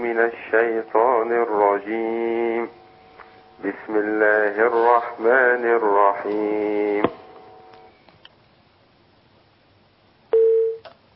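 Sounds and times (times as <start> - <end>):
speech: 0.1 - 2.8, 3.6 - 7.2
telephone line tone after a call drops: 10.3 - 10.8.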